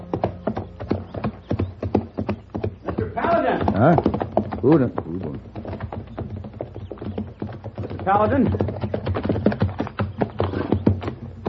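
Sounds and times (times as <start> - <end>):
horse hooves clip-clopping at a walking pace: 0.0 - 11.4
speech: 3.8 - 5.0, 8.0 - 8.7.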